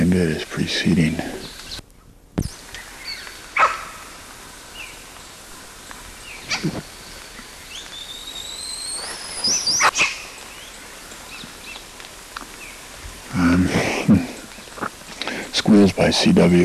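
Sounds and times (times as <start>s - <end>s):
steady hiss: 0.0s - 16.6s
speech: 0.1s - 1.6s, 15.8s - 16.6s
dog squealing with high rising whistles: 3.6s - 4.0s
dogs barking outdoors: 3.6s - 4.2s.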